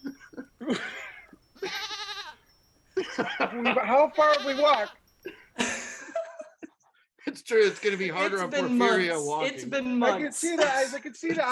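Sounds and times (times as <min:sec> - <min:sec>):
laughter: 0:00.0 - 0:02.0, 0:03.0 - 0:09.2, 0:10.2 - 0:11.5
speech: 0:00.7 - 0:01.0, 0:03.2 - 0:05.0, 0:07.5 - 0:11.5
person doing a goat impression with wavering nasal bleats: 0:01.6 - 0:02.4, 0:04.1 - 0:05.0.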